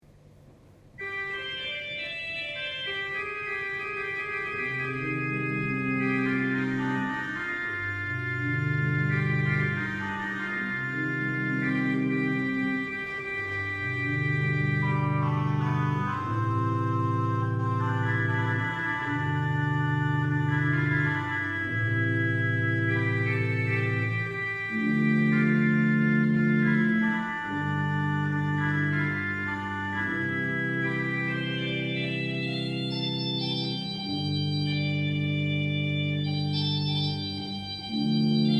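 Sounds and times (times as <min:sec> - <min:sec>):
cromorne: 0:01.0 - 0:38.5.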